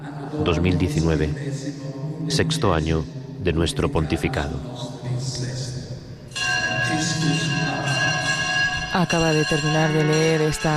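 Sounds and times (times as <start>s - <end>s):
ambient room noise: 0.0s - 10.7s
speech: 0.3s - 5.5s, 9.0s - 10.7s
cathedral bells ringing: 5.7s - 10.7s.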